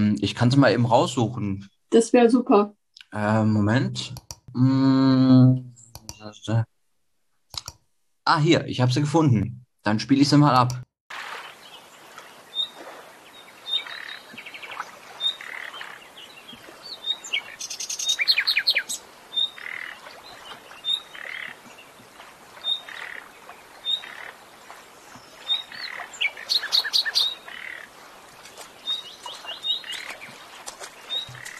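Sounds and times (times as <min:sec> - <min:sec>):
speech: 0:00.0 - 0:06.7, 0:07.5 - 0:11.3
birds chirping and tweeting at a lakeshore: 0:05.8 - 0:06.7, 0:11.3 - 0:31.5
footsteps splashing through shallow water at a lakeshore: 0:11.1 - 0:17.7, 0:19.7 - 0:31.5.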